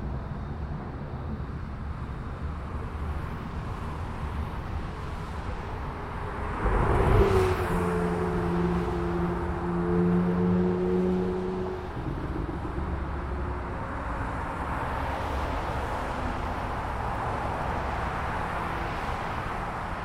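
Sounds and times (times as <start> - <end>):
highway traffic rumble of passing vehicles: 0.0 - 20.0
loud vehicle passing by on a highway: 5.8 - 20.0
low droning tone: 6.2 - 15.9.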